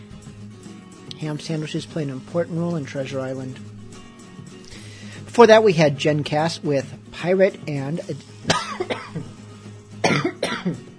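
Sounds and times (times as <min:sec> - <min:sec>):
speech: 0:01.2 - 0:03.7, 0:05.4 - 0:09.0
dry coughing from an irritated dry throat: 0:08.5 - 0:09.3, 0:10.0 - 0:10.9.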